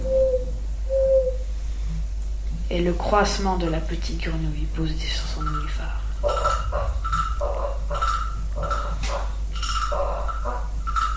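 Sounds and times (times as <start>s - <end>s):
old owl hooting at nightfall: 0.0s - 1.5s, 5.2s - 11.1s
speech: 2.7s - 6.6s.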